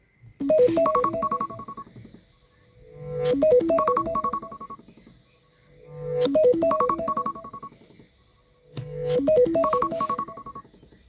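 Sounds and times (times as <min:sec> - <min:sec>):
iPhone ringing: 0:00.4 - 0:02.0, 0:03.3 - 0:04.9, 0:06.2 - 0:07.8, 0:08.8 - 0:10.7.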